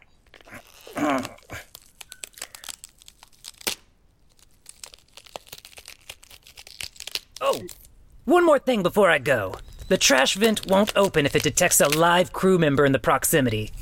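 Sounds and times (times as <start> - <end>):
bones crunching and cracking as they fold up: 0.0 - 8.0, 9.8 - 12.3
speech: 8.3 - 13.8.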